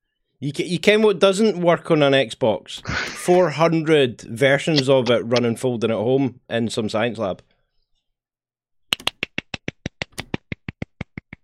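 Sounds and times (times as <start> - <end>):
speech: 0.4 - 7.5
lone round of crisp hand claps: 8.9 - 11.4.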